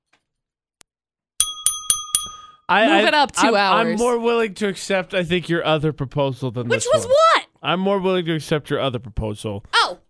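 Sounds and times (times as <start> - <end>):
small bell ringing: 1.4 - 2.7
speech: 2.7 - 10.0.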